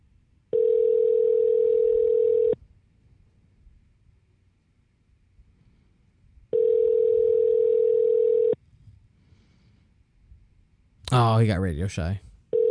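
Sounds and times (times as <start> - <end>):
outgoing call ringback tones on a phone line: 0.5 - 2.6, 6.5 - 8.6
speech: 11.2 - 12.3.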